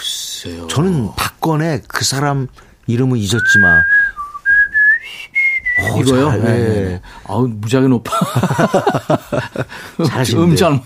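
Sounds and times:
speech: 0.4 - 4.0, 5.8 - 10.8
person whistling a tune: 3.4 - 6.2
laughter: 8.1 - 10.0.

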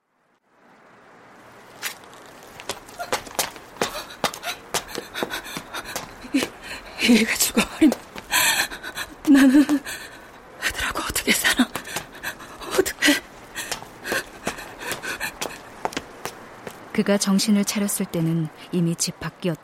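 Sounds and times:
heavy ragged panting breaths: 3.8 - 10.8, 11.7 - 15.8
speech: 7.1 - 8.0, 17.1 - 19.6.

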